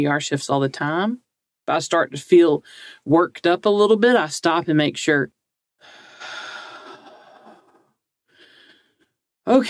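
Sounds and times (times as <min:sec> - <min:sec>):
speech: 0:00.0 - 0:06.4, 0:09.5 - 0:09.6
slow controlled paced breathing: 0:05.8 - 0:09.2.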